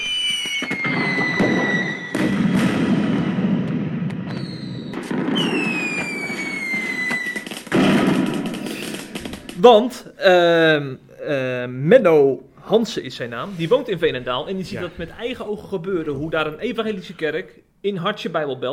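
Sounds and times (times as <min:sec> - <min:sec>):
whistling firework rockets: 0:00.0 - 0:09.6
fireworks crackling and booming: 0:00.0 - 0:10.0
speech: 0:09.6 - 0:18.7.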